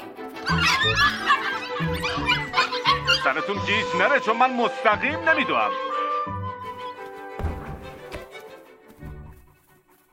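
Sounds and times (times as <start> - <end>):
small dogs yapping and yelping excitedly: 0.2 - 4.1
squeaky, giggly-sounding cries: 0.4 - 4.1
speech: 0.5 - 2.3, 3.3 - 5.9.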